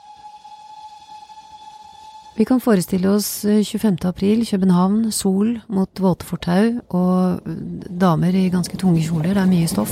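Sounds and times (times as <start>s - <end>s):
steam train whistle blowing in Copenhagen: 0.0s - 3.5s
speech: 2.4s - 9.9s.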